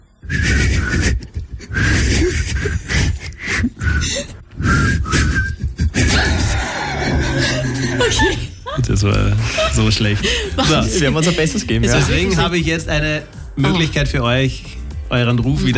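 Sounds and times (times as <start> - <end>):
two people whistling a pop song melody: 0.3 - 2.8, 3.4 - 5.7
laughter: 0.5 - 4.4, 5.3 - 13.0, 13.6 - 14.3
speech: 9.0 - 15.7.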